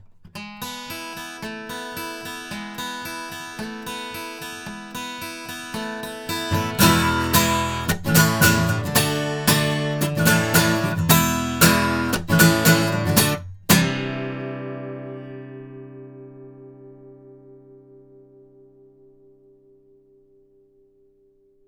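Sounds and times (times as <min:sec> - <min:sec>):
guitar recorded with cardioid microphones: 0:00.0 - 0:21.6.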